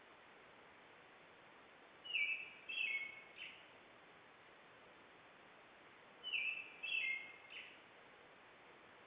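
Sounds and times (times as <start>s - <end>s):
steady background hiss: 0.0s - 9.0s
European robin singing: 2.0s - 3.7s, 6.2s - 7.8s.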